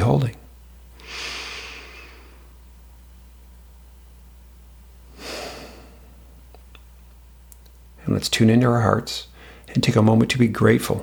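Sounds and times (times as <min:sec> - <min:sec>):
low steady hum: 0:00.0 - 0:11.0
speech: 0:00.1 - 0:00.4, 0:08.1 - 0:11.0
slow calming breathing during a relaxation exercise: 0:01.0 - 0:02.6, 0:05.1 - 0:06.3, 0:09.3 - 0:09.7.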